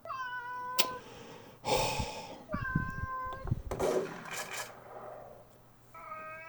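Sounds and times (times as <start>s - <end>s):
cat meowing while lifted onto a table: 0.0s - 3.8s, 5.9s - 6.4s.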